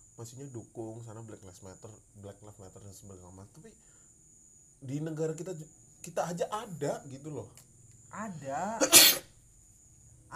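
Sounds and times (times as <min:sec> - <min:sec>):
speech: 0:00.2 - 0:04.0, 0:04.8 - 0:09.3
person sneezing from cigarette smoke: 0:08.8 - 0:09.3.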